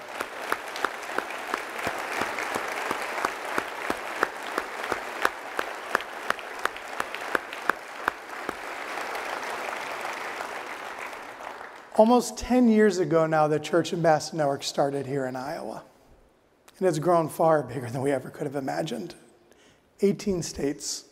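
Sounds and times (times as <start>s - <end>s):
sizable audience applauding: 0.0s - 12.1s
speech: 12.0s - 15.9s, 16.8s - 19.2s, 20.0s - 21.1s.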